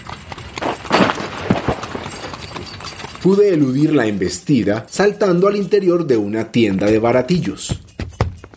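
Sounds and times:
rattling carriage wheels: 0.0s - 5.5s
horse-drawn carriage clattering past at speed: 0.0s - 8.5s
quick irregular hoofbeats: 0.0s - 8.5s
speech: 3.2s - 7.9s.

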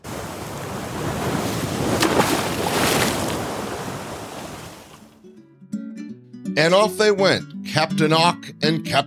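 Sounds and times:
ocean waves washing and surging as a ship sails across the open ocean: 0.0s - 5.2s
wind over the open ocean: 0.0s - 5.2s
speech: 6.6s - 9.0s.

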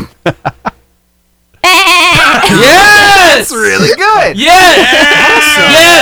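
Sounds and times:
speech: 0.2s - 0.6s, 3.4s - 6.0s
person imitating a bleating sheep-like cartoon laugh: 1.6s - 6.0s
person speaking loudly: 2.2s - 6.0s.

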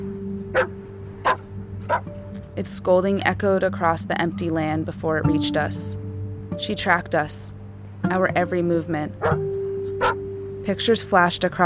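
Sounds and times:
dog barking: 0.5s - 2.0s, 9.2s - 9.4s, 10.0s - 10.2s
speech: 0.6s - 0.8s, 2.6s - 6.0s, 6.6s - 9.5s, 10.6s - 11.6s.

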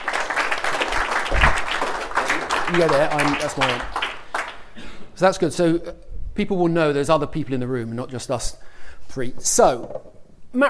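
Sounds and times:
room full of people applauding: 0.0s - 4.8s
speech: 2.7s - 4.0s, 5.2s - 10.6s.

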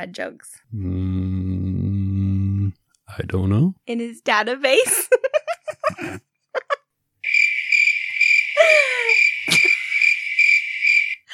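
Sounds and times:
speech: 0.0s - 1.8s, 3.1s - 6.2s
laughter: 4.9s - 6.8s, 8.6s - 10.2s
crickets chirping: 7.2s - 11.3s.

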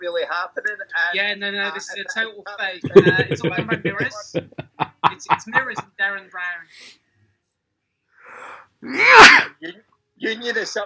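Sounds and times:
speech: 0.0s - 7.1s, 8.3s - 10.8s
laughter: 2.9s - 5.8s
man sneezing into elbow: 8.4s - 9.5s.

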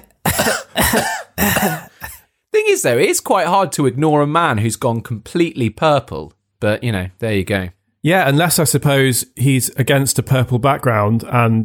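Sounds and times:
person imitating a coughing fit: 0.0s - 2.3s
speech: 0.4s - 1.9s, 2.8s - 11.6s.

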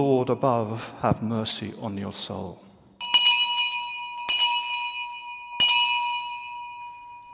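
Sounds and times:
speech: 0.1s - 2.6s
old hand bell ringing: 3.0s - 7.3s.

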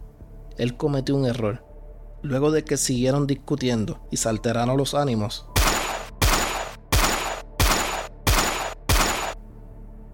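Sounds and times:
speech: 0.6s - 1.6s, 2.2s - 5.5s
loud gunshots: 5.6s - 9.4s.

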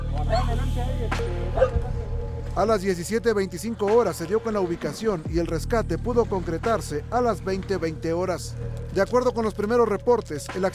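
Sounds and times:
trained search dogs barking at a landslide in a ravine: 0.2s - 0.7s, 1.5s - 1.9s
speech: 0.3s - 2.0s, 2.6s - 10.7s.

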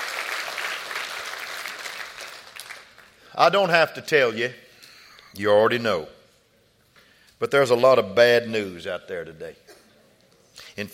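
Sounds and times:
audience applauding: 0.0s - 3.2s
speech: 3.4s - 4.6s, 5.3s - 6.2s, 7.4s - 9.7s, 10.6s - 10.9s.

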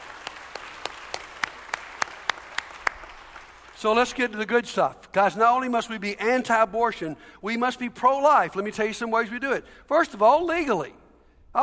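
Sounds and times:
audience applauding: 0.0s - 4.0s
sharp evenly spaced claps: 0.0s - 4.0s
speech: 3.8s - 11.0s.

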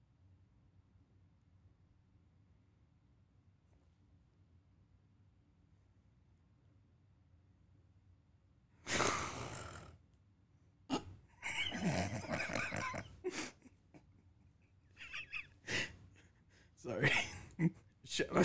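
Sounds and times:
breathy gasps and sighs: 8.9s - 9.9s, 15.6s - 16.8s
person imitating snoring: 8.9s - 10.0s, 11.7s - 13.0s
laughter: 11.4s - 13.8s, 15.0s - 15.9s, 16.9s - 18.4s
speech: 16.8s - 18.4s.

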